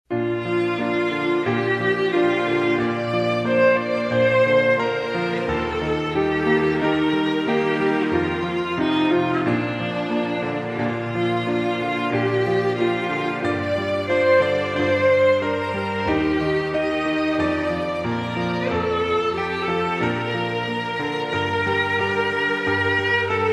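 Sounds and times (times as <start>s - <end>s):
violin playing a hymn: 0.1s - 23.5s.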